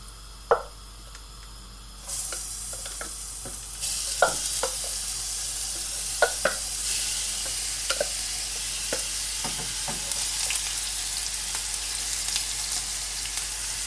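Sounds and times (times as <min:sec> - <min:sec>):
onion, carrot and celery frying in a hot pan: 0:00.0 - 0:13.8
wooden spoon stirring and tapping a pan: 0:02.8 - 0:05.0, 0:05.8 - 0:06.6, 0:08.9 - 0:10.2.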